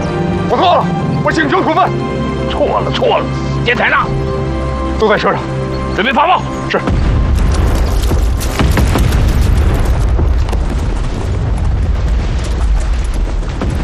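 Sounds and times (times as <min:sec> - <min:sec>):
speech: 0:00.6 - 0:04.4, 0:05.0 - 0:07.1
artillery barrage from the north booming: 0:06.9 - 0:13.8.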